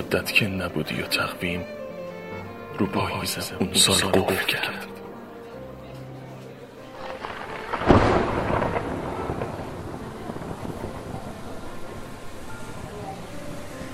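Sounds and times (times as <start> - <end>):
rain: 0.0 - 13.9
speech: 0.1 - 1.8, 2.8 - 5.0
thunder crack and long low rumble: 7.0 - 13.9.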